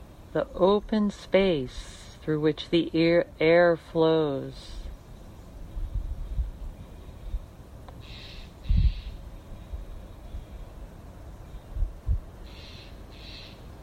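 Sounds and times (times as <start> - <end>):
speech: 0.4 - 4.8
faint bird calls outdoors: 4.8 - 11.8, 12.4 - 13.8.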